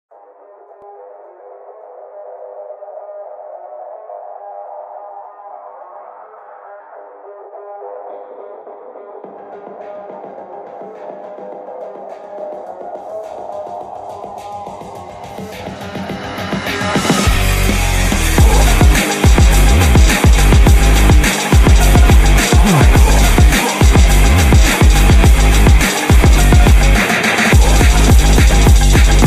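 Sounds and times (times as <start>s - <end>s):
phonk music: 0.1s - 29.2s.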